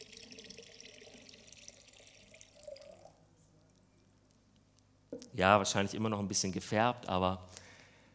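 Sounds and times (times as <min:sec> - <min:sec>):
clear water pouring into a container of murky water: 0:00.0 - 0:03.2
speech: 0:05.2 - 0:07.6.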